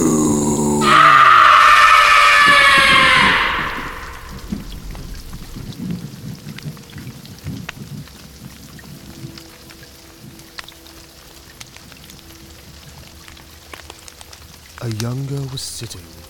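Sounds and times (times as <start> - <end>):
steady heavy rain pattering during a storm at night: 0.0 - 16.2
loud crack of thunder rumbling during a night storm: 0.8 - 8.6
speech: 15.8 - 16.2.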